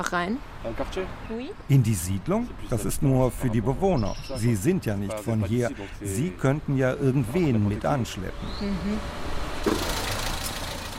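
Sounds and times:
speech: 0:00.0 - 0:09.4
car pulling up with engine running: 0:09.6 - 0:10.9.

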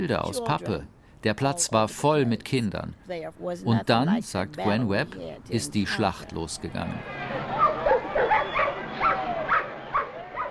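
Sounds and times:
speech: 0:00.0 - 0:07.3
crowd murmuring: 0:04.7 - 0:10.4
police dogs barking: 0:07.4 - 0:10.4.

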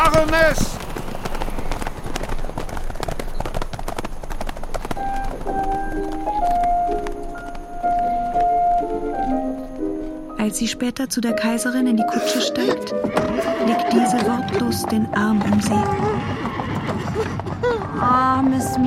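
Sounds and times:
hoofbeats of a galloping horse: 0:00.0 - 0:10.6, 0:12.8 - 0:18.8
speech: 0:00.2 - 0:00.8, 0:10.4 - 0:16.4, 0:18.1 - 0:18.8
soft sustained musical tones: 0:05.0 - 0:15.4.

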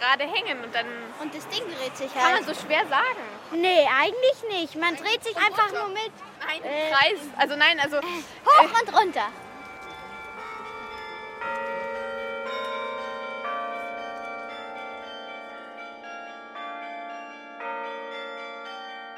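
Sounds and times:
speech: 0:00.0 - 0:09.4
church tower glockenspiel chiming a slow melody: 0:09.3 - 0:19.1.

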